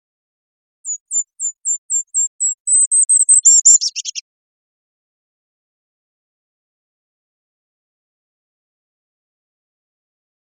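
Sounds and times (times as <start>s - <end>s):
golden-crowned kinglet giving high thin notes and jumbled chatter: 0.9s - 4.2s.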